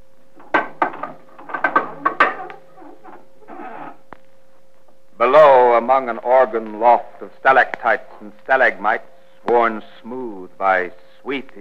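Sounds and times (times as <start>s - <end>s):
faint steady hum: 0.0s - 11.5s
trap door under a carpet being opened with wooden knocks and clunks: 0.4s - 3.3s
speech: 5.9s - 11.5s.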